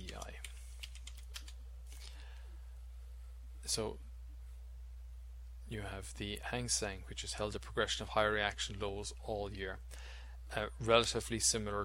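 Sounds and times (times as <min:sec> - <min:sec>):
typing on a computer keyboard: 0:00.0 - 0:01.6
speech: 0:03.7 - 0:04.1, 0:05.7 - 0:11.8.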